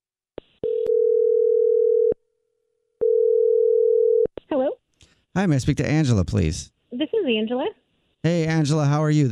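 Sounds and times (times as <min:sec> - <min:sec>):
long steady phone ringing tone: 0:00.6 - 0:02.2, 0:03.0 - 0:04.3
speech: 0:05.4 - 0:09.3.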